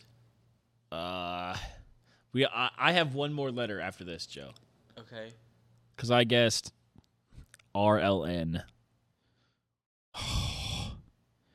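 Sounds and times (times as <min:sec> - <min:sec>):
speech: 0:02.3 - 0:05.4, 0:06.0 - 0:06.8, 0:07.7 - 0:08.8
breathy exhale blown into a microphone: 0:10.2 - 0:11.5.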